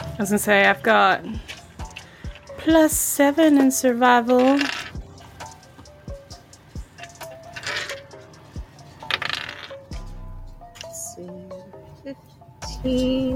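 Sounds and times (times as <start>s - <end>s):
speech: 0.2s - 1.6s, 2.6s - 5.0s, 12.9s - 13.2s
dice being grabbed and rolled: 4.3s - 5.0s, 7.5s - 8.1s, 9.0s - 9.9s.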